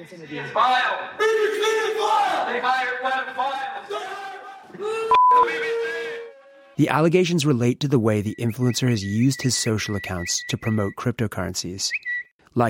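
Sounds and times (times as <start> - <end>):
speech: 0.0 - 6.2, 6.8 - 12.6
crowd of supporters shouting abuse: 0.5 - 6.8.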